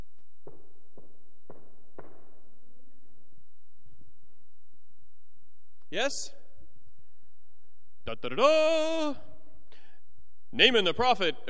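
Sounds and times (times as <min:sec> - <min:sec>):
knocks on a resonant surface: 0:00.4 - 0:02.4
speech: 0:05.9 - 0:06.4, 0:08.1 - 0:09.3, 0:10.5 - 0:11.4.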